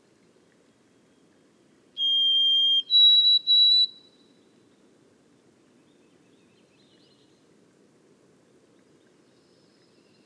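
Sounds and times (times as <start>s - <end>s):
White-throated sparrow whistled song in boreal forest: 2.0s - 4.0s.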